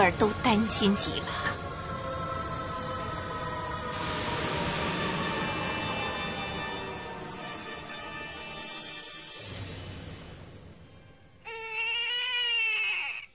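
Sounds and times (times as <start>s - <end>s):
speech: 0.0s - 1.6s
dense rushing noise: 0.0s - 11.5s
newborn baby crying: 11.4s - 13.3s.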